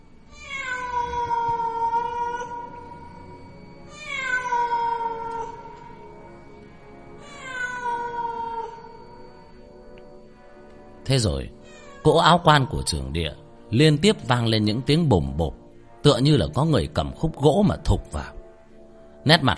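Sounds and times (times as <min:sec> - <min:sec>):
wild cat yowling mournfully: 0:00.3 - 0:03.2, 0:03.9 - 0:05.7, 0:07.2 - 0:09.0
speech: 0:11.1 - 0:18.4, 0:19.2 - 0:19.5.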